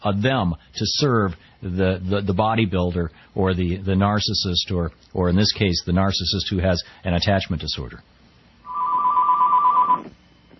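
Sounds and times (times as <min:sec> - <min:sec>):
speech: 0:00.0 - 0:08.2
telephone ringing with a warbling electronic trill: 0:08.7 - 0:10.2.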